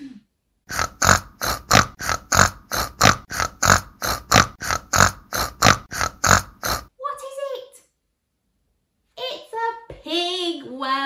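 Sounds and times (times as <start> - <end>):
pig grunting and oinking: 0.7 - 6.9.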